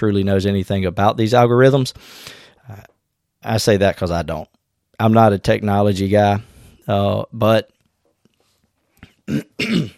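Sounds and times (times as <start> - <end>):
speech: 0.0 - 7.8, 9.3 - 9.9
throat clearing and coughing from someone recovering from a cough: 9.1 - 9.9.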